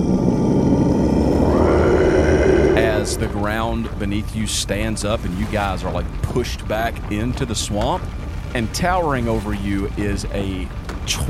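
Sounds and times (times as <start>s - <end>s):
deep rumbling monster roar: 0.0s - 4.3s
speech: 3.1s - 11.2s.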